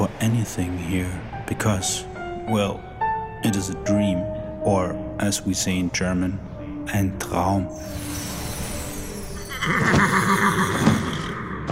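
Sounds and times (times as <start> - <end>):
speech: 0.2 - 8.2, 9.6 - 11.0
horse neighing: 9.4 - 11.7.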